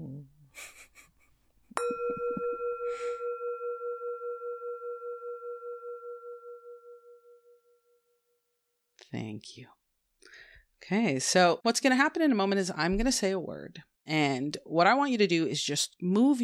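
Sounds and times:
meditation bell chime: 1.8s - 8.4s
soft breath: 2.8s - 3.4s, 10.2s - 10.7s
speech: 9.1s - 9.8s, 10.8s - 16.4s.

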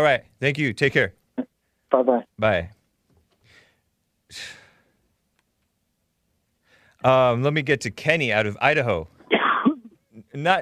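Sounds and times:
speech: 0.0s - 1.2s, 1.9s - 2.8s, 4.3s - 4.6s, 7.0s - 9.2s, 10.4s - 10.6s
person coughing harshly: 9.3s - 9.9s.

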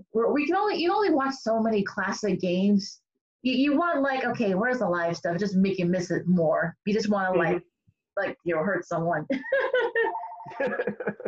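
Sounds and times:
speech: 0.1s - 11.2s
laughter: 9.3s - 11.2s
phone ringing with a short electronic tone: 10.0s - 10.6s.

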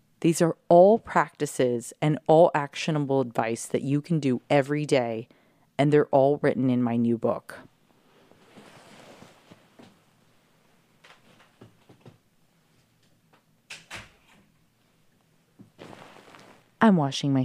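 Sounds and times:
speech: 0.2s - 7.7s, 16.8s - 17.4s
door being pushed shut: 13.7s - 14.4s.

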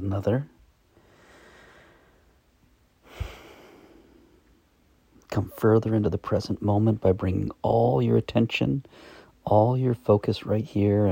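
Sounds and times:
speech: 0.0s - 0.6s, 5.3s - 11.1s
quiet hissy background: 0.0s - 11.1s
long deep breath during a guided relaxation exercise: 0.9s - 4.7s, 8.8s - 9.4s.

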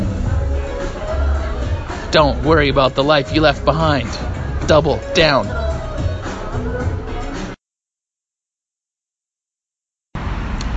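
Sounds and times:
passing traffic rumble on a street: 0.0s - 6.7s, 10.2s - 10.7s
speech: 2.1s - 5.6s.

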